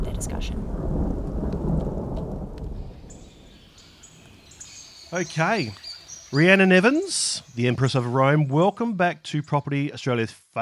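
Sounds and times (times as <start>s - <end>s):
deep thunder rumble from a massive storm: 0.0s - 5.6s
steady rain: 0.0s - 8.8s
faint bird chirps: 2.8s - 9.8s
speech: 5.1s - 10.5s.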